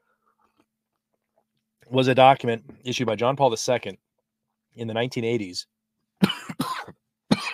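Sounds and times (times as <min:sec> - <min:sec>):
speech: 0:01.9 - 0:04.0, 0:04.8 - 0:06.4
person coughing: 0:06.2 - 0:07.5.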